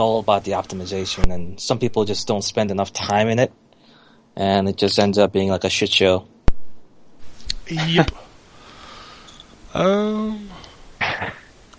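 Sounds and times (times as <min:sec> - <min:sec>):
speech: 0:00.0 - 0:03.6, 0:04.4 - 0:06.3, 0:07.7 - 0:08.3, 0:09.7 - 0:10.6
person clearing throat: 0:11.0 - 0:11.5
person coughing: 0:11.0 - 0:11.5.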